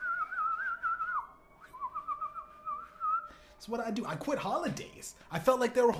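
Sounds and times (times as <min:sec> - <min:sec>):
person whistling a warbling tune imitating morning birdsong: 0:00.0 - 0:03.5
speech: 0:03.6 - 0:05.9.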